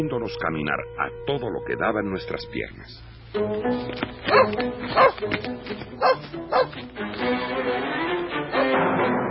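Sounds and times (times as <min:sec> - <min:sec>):
speech: 0:00.0 - 0:09.2
tracking dog barking and whining on a creosote scent trail: 0:04.3 - 0:05.2, 0:06.0 - 0:06.8.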